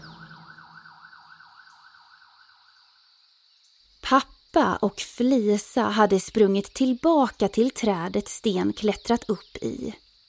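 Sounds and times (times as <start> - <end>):
fire engine siren wailing in a fast warble: 0.0 - 2.5
speech: 4.1 - 10.0.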